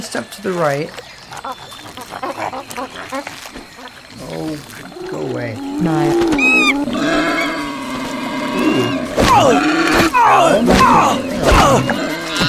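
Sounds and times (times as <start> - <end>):
speech: 0.0 - 7.3, 8.8 - 12.4
angry boar grunting and squealing in a video game: 1.2 - 12.4
bursts of harsh roaring noise: 4.9 - 12.4.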